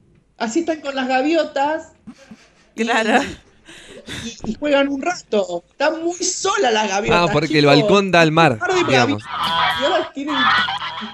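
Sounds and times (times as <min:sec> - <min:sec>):
speech: 0:00.4 - 0:03.5, 0:04.2 - 0:11.1
laughter: 0:02.1 - 0:04.5, 0:08.8 - 0:11.1
geese honking: 0:08.7 - 0:11.1.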